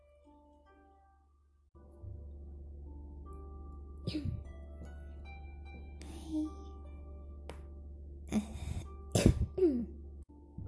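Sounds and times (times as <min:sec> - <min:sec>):
person coughing: 0:04.1 - 0:04.4, 0:09.1 - 0:10.0
speech: 0:04.1 - 0:04.5.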